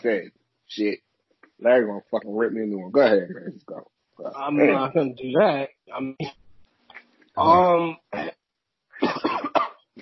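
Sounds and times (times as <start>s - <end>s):
speech: 0.0s - 6.4s, 7.4s - 8.4s
man coughing after choking on beer: 9.0s - 10.0s.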